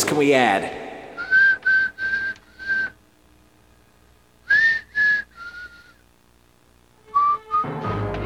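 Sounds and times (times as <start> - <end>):
speech: 0.1 - 0.8
person whistling a slow eerie tune: 1.2 - 2.9, 4.5 - 5.9, 7.1 - 7.7.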